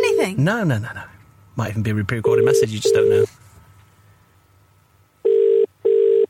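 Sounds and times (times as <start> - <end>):
speech: 0.3 - 3.4
double-burst ringback tones down a phone line: 2.4 - 3.3, 5.2 - 6.2.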